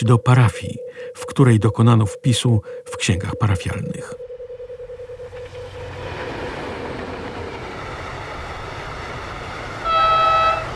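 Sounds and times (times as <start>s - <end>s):
speech: 0.0s - 4.3s
train rumbling at a station platform: 5.0s - 10.7s
train horn blast: 9.8s - 10.7s.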